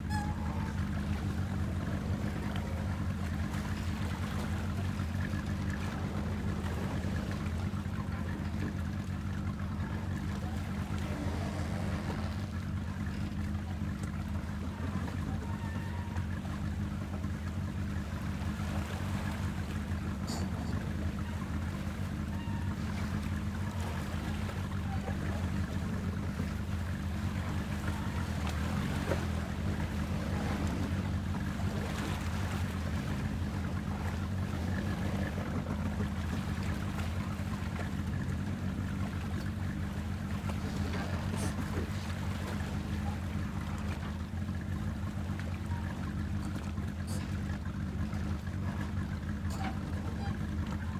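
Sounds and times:
sea outside: 0.0s - 50.9s.

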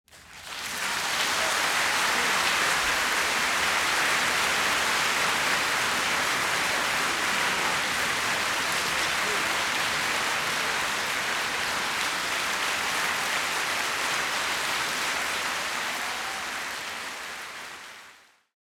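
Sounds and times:
large crowd applauding in a music hall: 0.1s - 18.5s
audience members shouting bravo: 15.8s - 16.7s.

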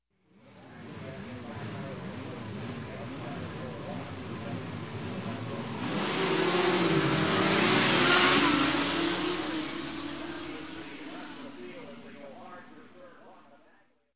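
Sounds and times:
production racing motorcycles at start of race: 0.8s - 13.3s.

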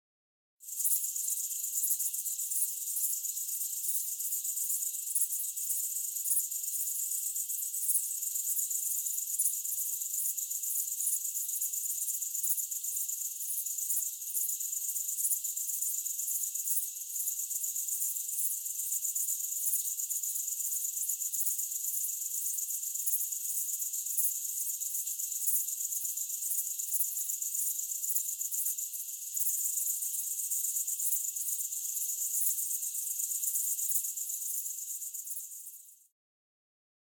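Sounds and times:
cricket ambience at night: 0.6s - 36.1s.

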